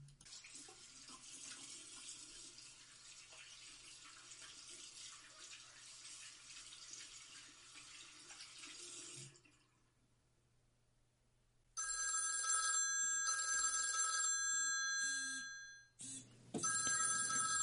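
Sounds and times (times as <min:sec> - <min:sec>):
water running from a tap: 0:00.2 - 0:09.6
telephone bell ringing: 0:11.8 - 0:16.0, 0:16.6 - 0:17.6.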